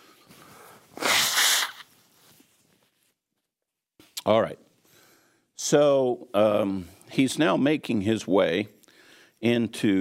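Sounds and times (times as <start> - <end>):
person sneezing: 1.0 - 1.8
speech: 4.3 - 4.6, 5.6 - 8.8, 9.4 - 9.9.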